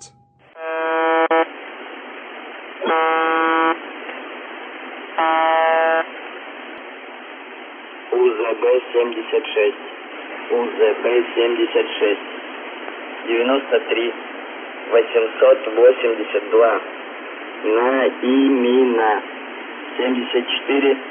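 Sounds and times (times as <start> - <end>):
shortwave radio station horn-like buzzing tone: 0.0 - 1.5, 2.8 - 3.8, 5.2 - 6.1
hissing shortwave radio static: 0.0 - 21.0
Russian radio voice speaking: 8.1 - 9.8, 10.5 - 12.2, 13.3 - 14.2, 14.9 - 16.9, 17.6 - 19.2, 20.0 - 21.0
speech: 8.6 - 12.4, 13.3 - 14.3, 14.9 - 16.9, 17.6 - 19.3, 20.0 - 21.0.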